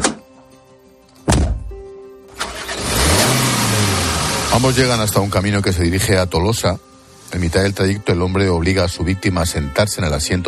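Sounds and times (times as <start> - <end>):
heavy thunks: 1.3 - 1.8
car engine turning over and revving: 2.3 - 6.2
speech: 4.6 - 10.4.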